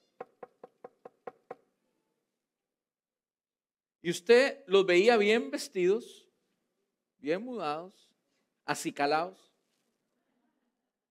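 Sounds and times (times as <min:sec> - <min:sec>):
knocking on a wooden door of a house: 0:00.2 - 0:01.6
speech: 0:04.0 - 0:06.2, 0:07.2 - 0:08.1, 0:08.7 - 0:09.5.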